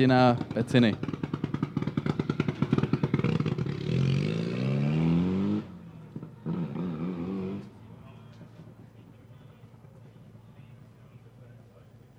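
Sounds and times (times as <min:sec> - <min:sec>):
speech: 0:00.0 - 0:01.2
rally car engine revving at stage finish: 0:00.4 - 0:07.8.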